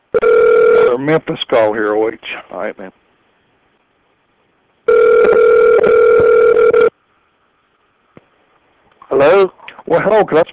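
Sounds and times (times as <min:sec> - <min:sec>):
electronic phone ringback tone on an outgoing call to Memphis: 0:00.1 - 0:00.9, 0:04.9 - 0:06.9
speech: 0:01.0 - 0:03.0, 0:09.1 - 0:10.5.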